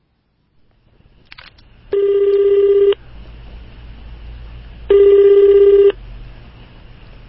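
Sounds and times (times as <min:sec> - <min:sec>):
quiet hum: 0:00.0 - 0:07.2
buzzing phone line ringback tones: 0:01.9 - 0:03.0, 0:04.9 - 0:06.0.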